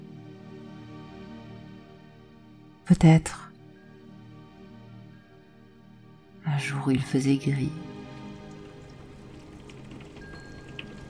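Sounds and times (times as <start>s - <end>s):
speech: 2.9s - 3.5s, 6.6s - 7.9s
raindrops tapping lightly against a window: 7.9s - 11.0s.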